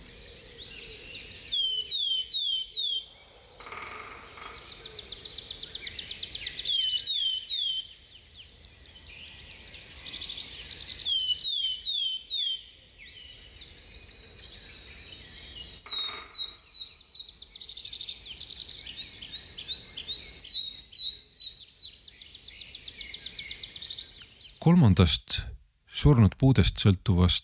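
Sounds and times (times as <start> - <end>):
willow tit song: 0.0 - 3.1, 5.2 - 25.0
speech: 24.7 - 27.4.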